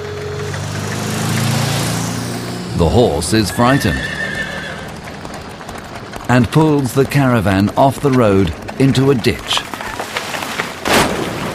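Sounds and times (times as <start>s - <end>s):
motor car driving past on a road: 0.0s - 6.2s
speech: 2.8s - 4.2s, 6.3s - 9.7s.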